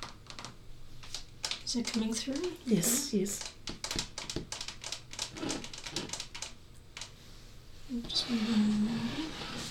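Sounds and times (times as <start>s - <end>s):
tapping on a computer monitor: 0.0s - 2.6s, 3.3s - 7.1s
speech: 1.7s - 4.1s, 7.9s - 9.5s.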